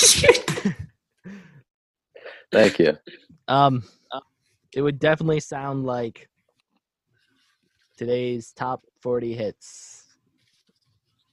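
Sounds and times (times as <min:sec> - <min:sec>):
person sneezing loudly: 0:00.0 - 0:00.9, 0:02.3 - 0:03.0
brief low voiced sound: 0:02.4 - 0:03.8
speech: 0:02.5 - 0:06.3, 0:08.0 - 0:09.9.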